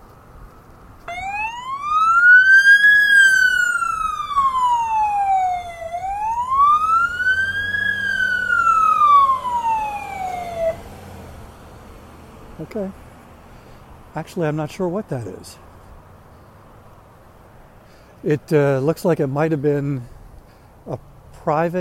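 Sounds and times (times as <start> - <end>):
low rumble of traffic: 0.0 - 21.7
police emergency vehicle siren passing: 1.1 - 11.0
speech: 14.2 - 15.7, 18.2 - 20.1, 20.8 - 21.7.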